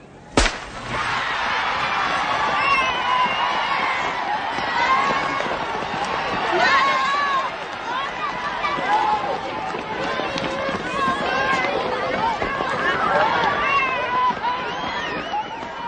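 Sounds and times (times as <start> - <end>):
sharp crack: 0.3 - 1.4
footsteps of children running a race around a lake: 1.5 - 15.8.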